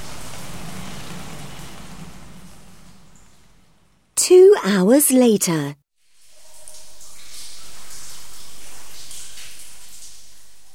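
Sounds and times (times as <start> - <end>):
steady rain pouring down: 0.0 - 4.1, 6.1 - 10.7
speech: 4.7 - 5.8.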